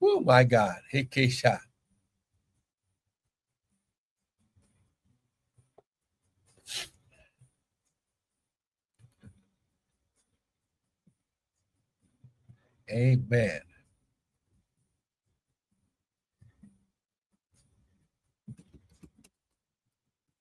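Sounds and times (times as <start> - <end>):
speech: 0.0 - 1.7, 12.9 - 13.7
soft irregular typing on a device: 18.5 - 19.5.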